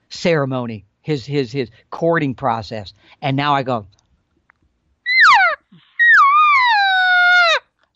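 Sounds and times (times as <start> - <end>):
speech: 0.2 - 4.0
imitated cow elk calls: 5.1 - 7.6.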